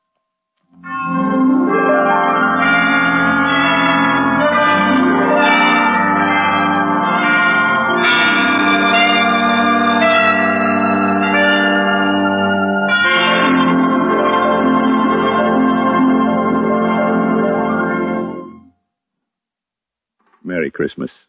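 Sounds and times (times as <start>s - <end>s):
hospital chimes striking the hour: 0.8s - 18.6s.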